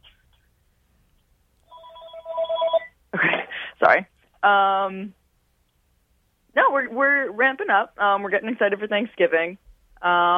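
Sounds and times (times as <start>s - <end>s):
telephone ringing with a bright electronic ringtone: 1.7s - 3.0s
speech: 3.8s - 5.2s, 6.6s - 10.3s.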